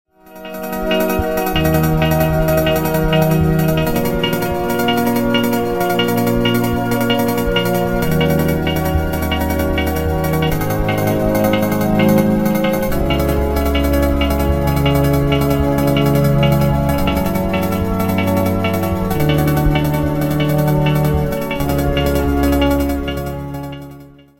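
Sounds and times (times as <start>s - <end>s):
filter modulated synth: 0.1s - 24.3s.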